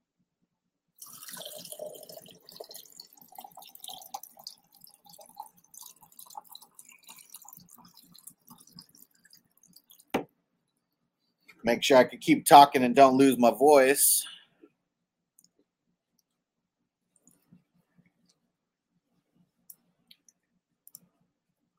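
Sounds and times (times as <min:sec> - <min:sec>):
water pouring into a glass: 0:01.0 - 0:10.2
speech: 0:11.6 - 0:14.3.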